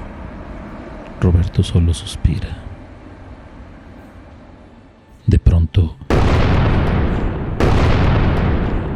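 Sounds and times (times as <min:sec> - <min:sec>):
speech: 0:01.2 - 0:02.7
loud roaring explosion: 0:06.1 - 0:08.9
sharp blast: 0:06.1 - 0:08.9.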